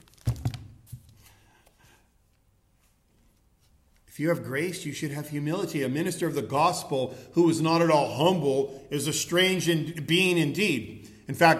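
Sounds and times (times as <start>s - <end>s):
paper sheets being shuffled and crumpled: 0.0s - 1.4s
speech: 4.2s - 11.5s.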